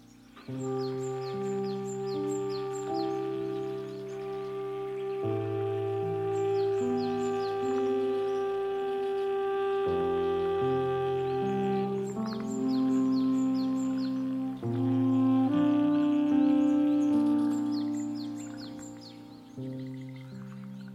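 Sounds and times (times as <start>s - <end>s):
frog calls in forest: 0.0s - 20.9s
high bird chirps in forest: 0.0s - 20.9s
slow sustained musical piece with shifting chords: 0.0s - 20.9s.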